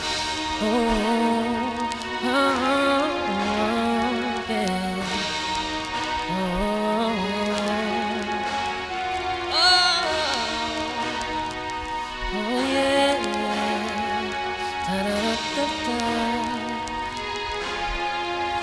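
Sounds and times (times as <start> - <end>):
full music mix with vocals: 0.0 - 18.6.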